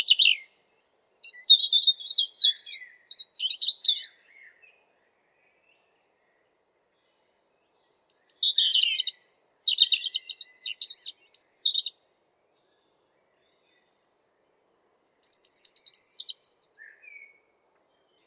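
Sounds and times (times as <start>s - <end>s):
European robin song: 0.0s - 0.5s, 1.2s - 4.2s, 7.9s - 11.9s, 15.0s - 17.3s.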